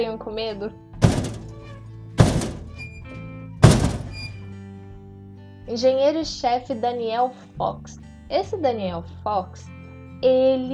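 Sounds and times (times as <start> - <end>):
speech: 0.0 - 1.3, 5.7 - 10.7
dull soft knocks: 1.0 - 3.0, 3.6 - 4.4.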